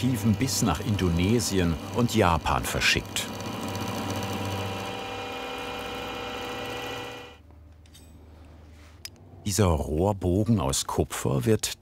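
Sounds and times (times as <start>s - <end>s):
speech: 0.0s - 3.4s, 9.5s - 11.7s
running machinery humming in a workshop: 0.0s - 7.4s.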